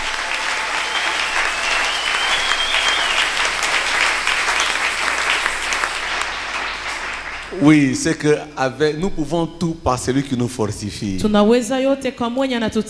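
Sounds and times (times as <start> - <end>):
church congregation applauding: 0.0 - 8.2
speech: 7.6 - 12.8.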